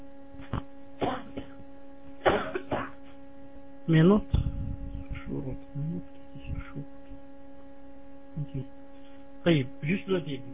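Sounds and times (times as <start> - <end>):
steady low electrical hum: 0.0 - 10.5
person coughing harshly: 1.0 - 1.6, 2.2 - 3.2
speech: 3.9 - 4.5, 9.4 - 10.5.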